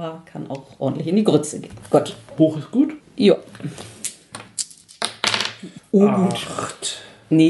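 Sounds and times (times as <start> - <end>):
speech: 0.0 - 4.0, 5.6 - 7.4
two dice rolled in a game tumbling on a table: 4.3 - 5.7.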